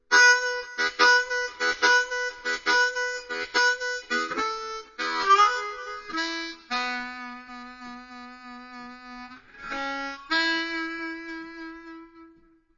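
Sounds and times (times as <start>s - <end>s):
harmonica: 0.1s - 12.6s.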